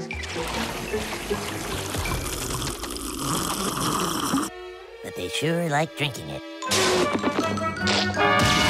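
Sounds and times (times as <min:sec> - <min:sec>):
water gushing and splashing: 0:00.0 - 0:04.5
speech: 0:00.9 - 0:01.8, 0:05.2 - 0:08.6.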